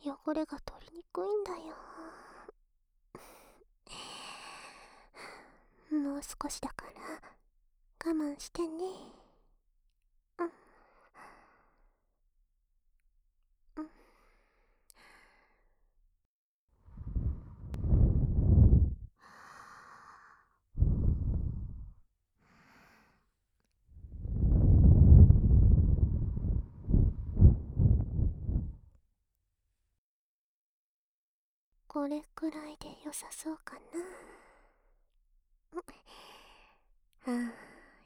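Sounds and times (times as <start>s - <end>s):
speech: 0.3s - 2.2s, 5.9s - 7.2s, 8.0s - 9.2s, 32.0s - 34.3s, 37.2s - 37.7s
person blowing air to clear away dirt: 16.9s - 19.1s, 20.8s - 21.9s, 24.0s - 28.8s.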